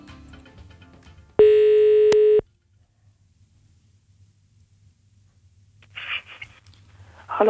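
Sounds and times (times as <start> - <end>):
telephone ringback tone during outgoing call: 1.4 - 2.4
faint low hum: 1.4 - 7.4.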